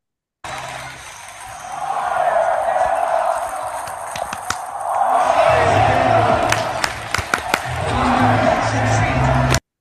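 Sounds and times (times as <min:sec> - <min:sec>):
stadium crowd chanting during a football game: 0:00.4 - 0:09.6.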